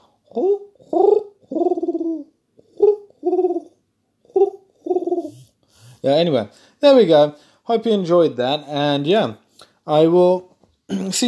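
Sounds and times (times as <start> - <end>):
person imitating a pigeon cooing: 0.0 - 6.1
speech: 0.4 - 1.2, 6.0 - 11.2.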